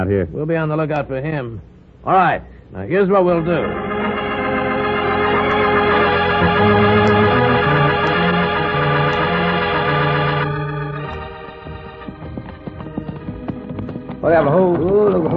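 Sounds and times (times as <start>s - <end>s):
speech: 0.0s - 3.9s, 14.2s - 15.3s
loud orchestral music: 3.3s - 14.7s
horses' hooves clip-clopping in a trotting rhythm: 11.2s - 15.3s.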